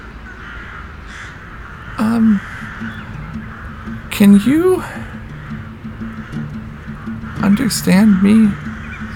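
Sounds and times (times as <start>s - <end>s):
raven cawing: 0.0s - 9.1s
speech: 2.0s - 3.0s, 4.2s - 5.1s, 7.5s - 8.7s.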